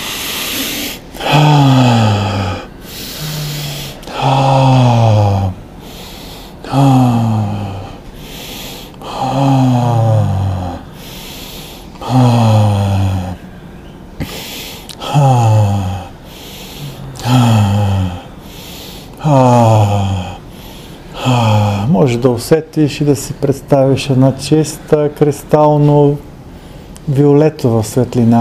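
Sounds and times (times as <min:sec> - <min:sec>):
forceful bhastrika bellows breathing: 0:00.0 - 0:22.0, 0:26.5 - 0:27.1
speech: 0:22.2 - 0:26.3, 0:27.1 - 0:28.3.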